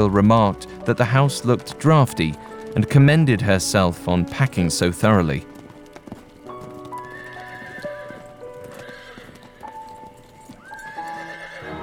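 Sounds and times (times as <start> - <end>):
speech: 0.0 - 5.6
hooves of a driven team of mares clip-clopping on a drive: 0.0 - 11.8
horse neighing and whinnying: 6.7 - 9.8, 10.6 - 11.8.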